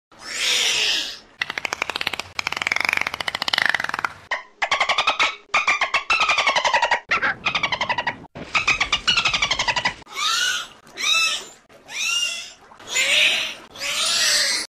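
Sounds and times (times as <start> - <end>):
dolphin sounds: 0.2 - 14.6.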